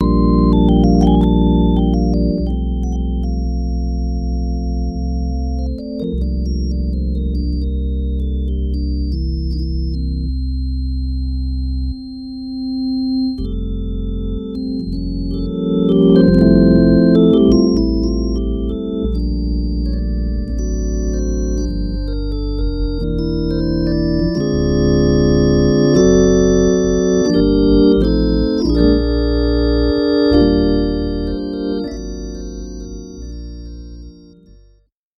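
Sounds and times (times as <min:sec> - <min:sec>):
slow dry organ: 0:00.0 - 0:34.9.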